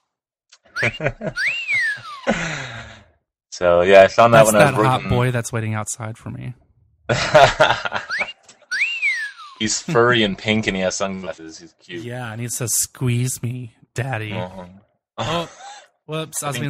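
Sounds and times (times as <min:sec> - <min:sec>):
laughter: 0:00.8 - 0:01.4, 0:07.1 - 0:08.3, 0:15.2 - 0:15.7
toy monkey electronic wolf whistle: 0:00.8 - 0:02.3, 0:08.1 - 0:09.6
speech: 0:00.8 - 0:08.0, 0:09.6 - 0:16.6.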